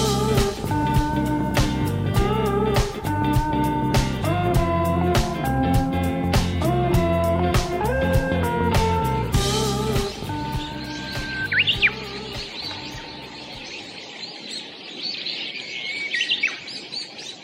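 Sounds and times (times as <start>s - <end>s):
tuneful musical jingle: 0.0s - 13.1s
busy bird chirping: 0.0s - 17.4s
Japanese bush warbler singing clear rising whistled phrases: 10.0s - 17.4s.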